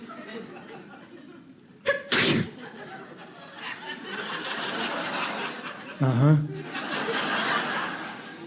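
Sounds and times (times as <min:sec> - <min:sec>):
laughter: 0:00.0 - 0:08.4
person sneezing: 0:01.9 - 0:02.6
speech: 0:06.0 - 0:06.5.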